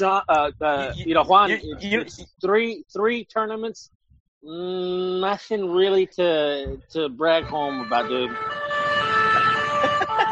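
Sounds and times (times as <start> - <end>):
laughter: 0.0 - 2.3, 9.2 - 10.3
speech: 0.0 - 8.6
European-style two-tone emergency siren: 7.3 - 10.3.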